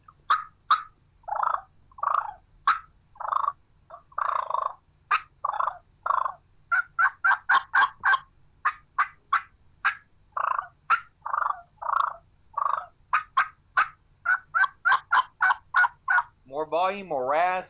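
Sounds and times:
agitated turkey hen clucking: 0.0s - 16.4s.

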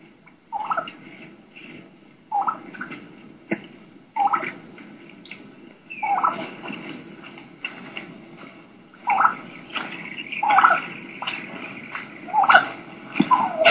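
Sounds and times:
faint rustling outdoors: 0.0s - 13.6s
young wild turkey key-key whistles running into yelps: 5.2s - 6.4s, 9.0s - 13.6s.

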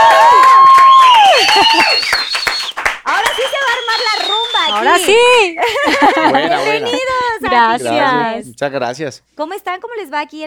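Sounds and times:
high whoops and shouts: 0.0s - 7.0s
loud crowd applause and cheering: 0.0s - 7.5s
laughter: 1.4s - 2.1s, 4.6s - 8.0s
speech: 5.0s - 10.4s.

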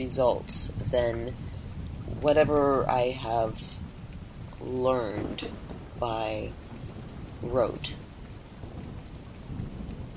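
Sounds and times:
speech: 0.0s - 1.5s, 2.1s - 3.8s, 4.6s - 6.6s, 7.4s - 8.0s
deep low rumble of thunder: 0.0s - 10.1s
steady dense rainfall: 0.0s - 10.1s.

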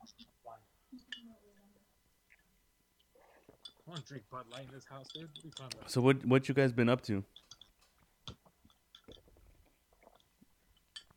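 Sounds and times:
speech: 3.9s - 7.4s
person chewing food: 7.5s - 11.1s.

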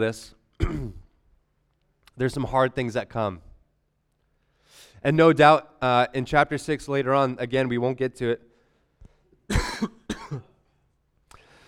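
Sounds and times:
speech: 0.0s - 0.4s, 2.2s - 3.5s, 4.7s - 8.5s, 9.5s - 10.4s
ill person coughing harshly: 0.6s - 1.2s, 9.5s - 10.6s.

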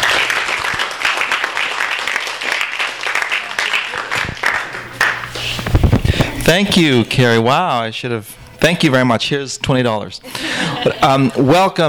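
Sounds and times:
room full of people applauding: 0.0s - 5.5s
speech: 6.5s - 11.8s
laughter: 10.2s - 11.8s.

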